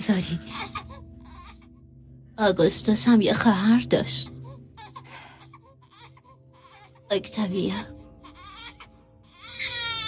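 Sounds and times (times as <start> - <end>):
speech: 0.0 - 0.8, 2.4 - 4.3, 7.1 - 8.0
newborn baby girl crying: 0.5 - 1.7, 4.6 - 7.1, 8.2 - 10.0.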